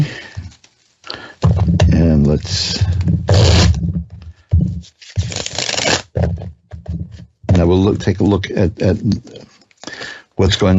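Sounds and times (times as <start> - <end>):
tarot cards being shuffled: 0.0 - 7.3
speech: 7.8 - 9.5, 10.4 - 10.7.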